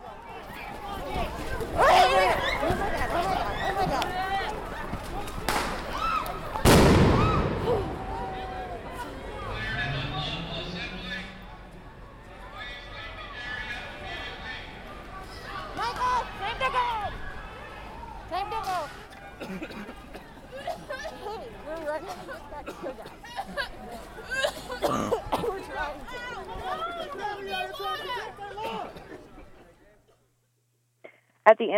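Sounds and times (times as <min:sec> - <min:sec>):
noisy crowd of shouting voices: 0:00.0 - 0:29.3
sharp loud bangs of flashbang grenades exploding: 0:06.6 - 0:11.9
laughter: 0:07.4 - 0:16.7, 0:18.9 - 0:30.0
people coughing harshly from tear gas: 0:19.0 - 0:25.8, 0:28.4 - 0:29.6
throat-clearing: 0:24.3 - 0:25.5
speech: 0:31.6 - 0:31.7.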